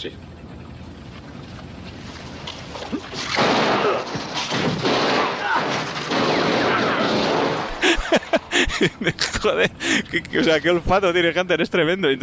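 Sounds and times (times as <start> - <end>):
speech: 0.0 - 0.3, 8.8 - 12.2
gunfire in a film scene: 3.4 - 7.7
laughter: 7.7 - 10.5.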